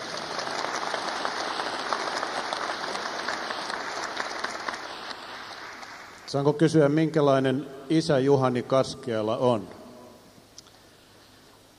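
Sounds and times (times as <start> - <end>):
audience applause: 0.0 - 6.3
speech: 6.3 - 9.8.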